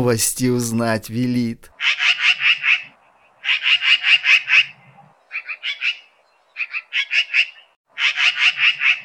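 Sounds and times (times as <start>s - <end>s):
speech: 0.0s - 2.0s
magpie chattering in harsh rattling bursts: 1.8s - 9.0s.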